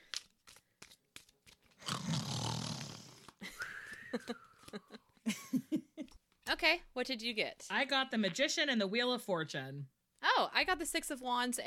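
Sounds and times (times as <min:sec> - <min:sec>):
person snoring: 0:01.8 - 0:03.3
thin whistling breath: 0:03.4 - 0:04.6
speech: 0:04.1 - 0:04.9, 0:06.6 - 0:11.6.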